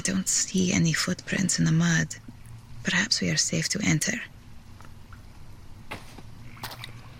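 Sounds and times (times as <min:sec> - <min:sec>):
speech: 0:00.0 - 0:04.3
steady low rumbling background: 0:00.0 - 0:07.1
water drops falling in a dark cave: 0:04.8 - 0:05.4.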